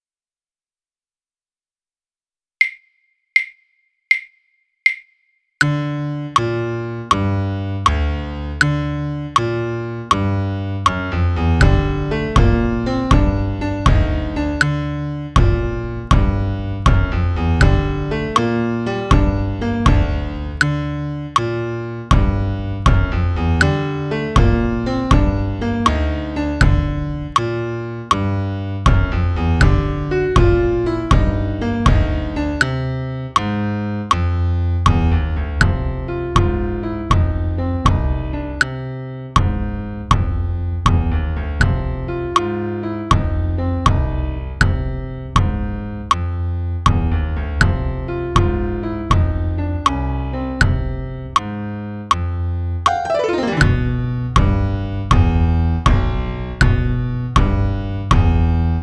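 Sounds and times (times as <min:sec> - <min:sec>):
piano: 0:05.6 - 0:58.8
bass drum: 0:10.9 - 0:21.0, 0:22.1 - 0:26.0, 0:26.6 - 0:28.2, 0:28.9 - 0:32.8, 0:34.9 - 0:38.6, 0:39.4 - 0:42.4, 0:43.1 - 0:46.3, 0:46.9 - 0:49.9, 0:50.6 - 0:51.5, 0:52.9 - 0:58.8.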